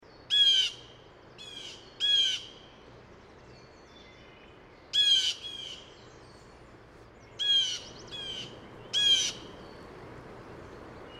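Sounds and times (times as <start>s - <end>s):
blue jay Cyanocitta cristata: 0.3s - 2.6s, 4.9s - 5.9s, 7.4s - 9.9s.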